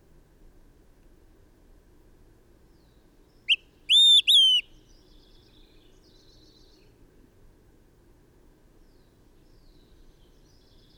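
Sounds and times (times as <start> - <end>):
bird singing: 2.8 - 7.0, 8.8 - 10.9.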